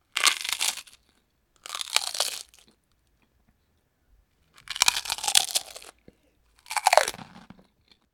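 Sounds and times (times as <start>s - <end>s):
eating potato chips with mouth open, crunchy: 0.1s - 2.8s, 4.6s - 6.0s, 6.6s - 8.0s.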